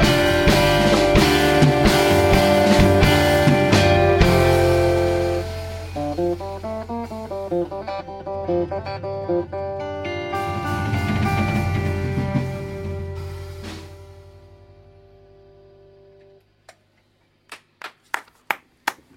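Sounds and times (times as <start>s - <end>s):
sustained musical chord: 0.0s - 16.4s
two people clapping hands in a large studio: 17.5s - 19.1s.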